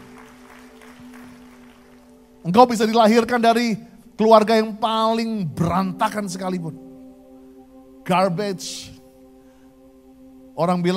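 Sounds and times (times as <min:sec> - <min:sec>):
audience applause: 0:00.0 - 0:02.4
speech: 0:02.4 - 0:06.8, 0:08.0 - 0:08.9, 0:10.6 - 0:10.9.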